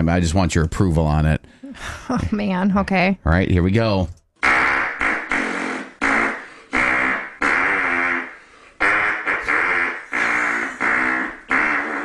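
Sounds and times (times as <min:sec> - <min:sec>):
speech: 0:00.0 - 0:04.2
buzzy hand-fart noises forming a national anthem melody: 0:04.4 - 0:12.0.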